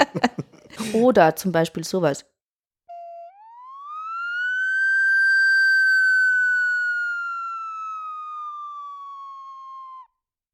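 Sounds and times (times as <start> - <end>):
laughter: 0.0 - 1.0
speech: 0.1 - 2.4
electronic measurement sine sweep test tone: 2.9 - 10.2.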